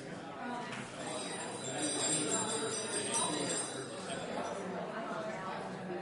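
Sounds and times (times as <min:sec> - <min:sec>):
murmur of many people chatting in a room: 0:00.0 - 0:06.0
hand bell ringing: 0:01.0 - 0:04.6.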